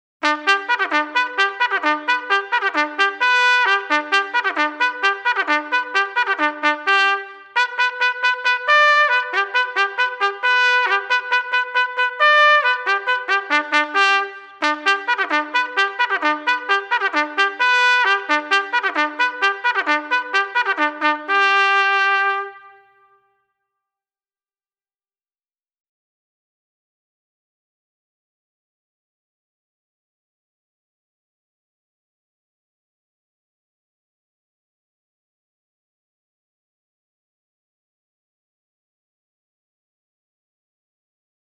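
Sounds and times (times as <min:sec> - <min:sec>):
bugle call: 0:00.2 - 0:23.1.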